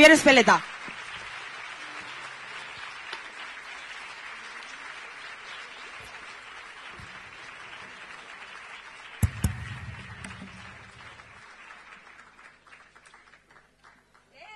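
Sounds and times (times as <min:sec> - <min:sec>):
speech: 0:00.0 - 0:00.7
crowd applauding: 0:00.0 - 0:14.4
loud thump: 0:09.2 - 0:11.4.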